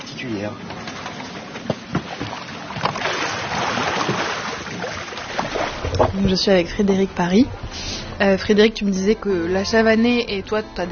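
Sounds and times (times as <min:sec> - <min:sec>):
water sloshing around a poled flat boat on a river: 0:00.0 - 0:09.9
speech: 0:00.2 - 0:00.8, 0:06.2 - 0:10.9
boat pole splashing and knocking the river bottom: 0:00.8 - 0:06.8.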